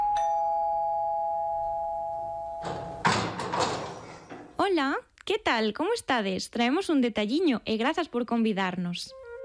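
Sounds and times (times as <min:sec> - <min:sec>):
doorbell ringing with a single clear chime: 0:00.0 - 0:03.0
speech: 0:04.8 - 0:09.2.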